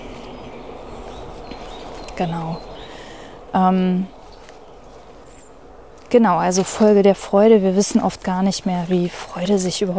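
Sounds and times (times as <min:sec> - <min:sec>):
birds chirping outdoors: 0:00.0 - 0:09.9
steady outdoor ambient noise: 0:00.0 - 0:09.9
speech: 0:02.2 - 0:02.7, 0:03.5 - 0:04.2, 0:06.1 - 0:09.9.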